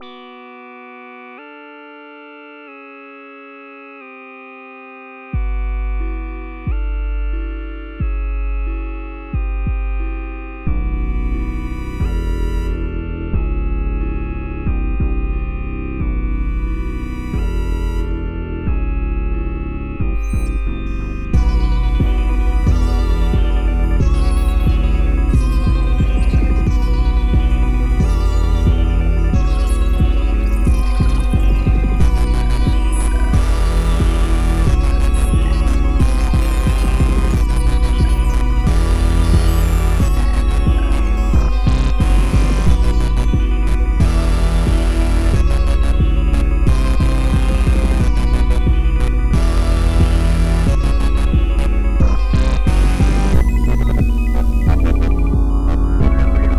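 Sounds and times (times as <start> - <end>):
Wayoutware Timewarp 2600 synthesizer: 0.0 - 56.5.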